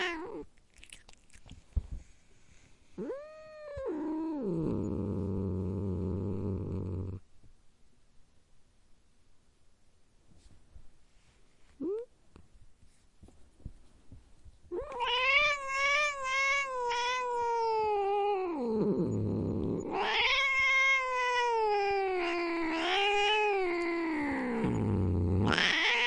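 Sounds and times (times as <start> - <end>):
domestic cat growling: 0.0 - 1.4, 3.0 - 7.2, 14.7 - 26.0
domestic cat yowling: 14.8 - 19.1, 19.8 - 24.8, 25.4 - 26.0.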